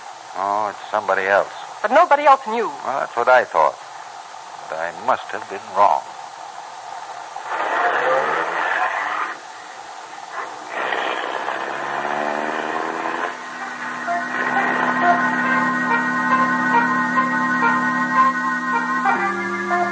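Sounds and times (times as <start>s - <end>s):
speech: 0.4s - 3.8s, 4.7s - 6.1s
car engine revving and shifting gears while pulling away: 7.4s - 9.4s, 10.3s - 19.9s.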